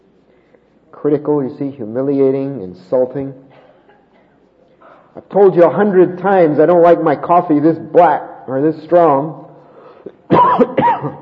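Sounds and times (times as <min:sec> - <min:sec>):
speech: 0:00.9 - 0:03.4, 0:05.2 - 0:09.4, 0:10.3 - 0:11.2
man coughing harshly: 0:10.1 - 0:11.2.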